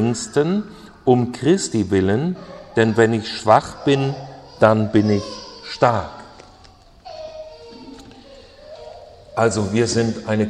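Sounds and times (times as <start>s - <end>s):
speech: 0.1s - 6.2s, 9.4s - 10.4s
baby crying in the audience: 2.0s - 10.4s.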